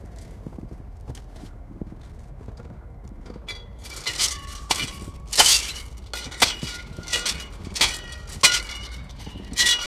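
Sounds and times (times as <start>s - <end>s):
pickaxes hitting coal: 3.5s - 9.9s.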